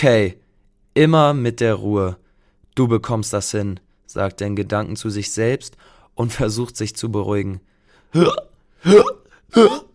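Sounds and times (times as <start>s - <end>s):
speech: 0.0s - 0.4s, 1.0s - 2.2s, 2.8s - 9.9s
voiced hiccups from an excited dinosaur character: 8.2s - 9.9s.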